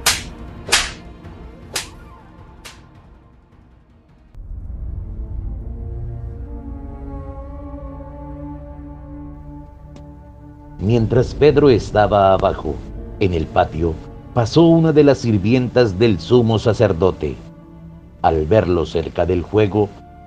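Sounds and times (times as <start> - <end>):
slaps to the face: 0.0 - 1.0, 1.7 - 2.0
low sustained droning musical swell: 0.0 - 20.2
speech: 10.8 - 17.4, 18.2 - 20.0.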